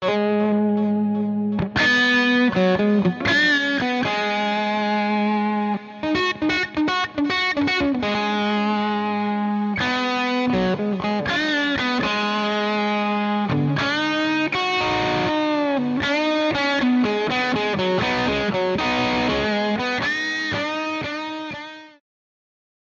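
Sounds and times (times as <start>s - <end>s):
dry guitar with phaser whooshing tone: 0.0s - 21.7s.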